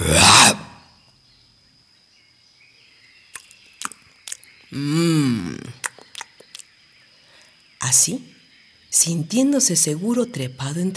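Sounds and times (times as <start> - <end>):
jaguar throaty growl: 0.0 - 0.8
jaguar biting with a sharp snap: 3.3 - 4.5, 5.6 - 6.7
speech: 4.7 - 5.1, 7.8 - 10.9.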